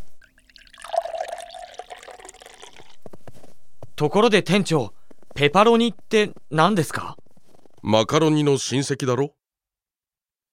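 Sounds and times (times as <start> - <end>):
hot water poured and mixed into flour for pizza dough: 0.2 - 3.0
liquid splashing and trickling: 0.2 - 3.0
speech: 4.0 - 7.2, 7.8 - 9.4.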